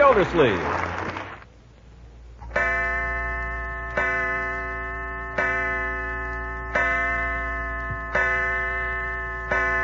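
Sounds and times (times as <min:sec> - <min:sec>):
speech: 0:00.2 - 0:00.8
clock striking six o'clock chimes: 0:02.5 - 0:09.8.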